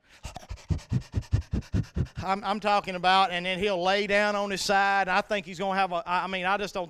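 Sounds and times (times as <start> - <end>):
person imitating a little dog panting: 0.0 - 2.8
speech: 2.2 - 6.8.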